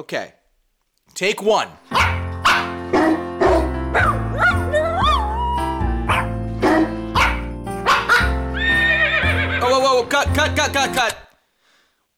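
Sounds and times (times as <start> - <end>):
speech: 0.0 - 0.4, 1.1 - 2.2, 3.9 - 4.2, 10.0 - 11.2
bright music backing: 1.8 - 11.2
dogs barking a festive carol melody: 1.9 - 8.8.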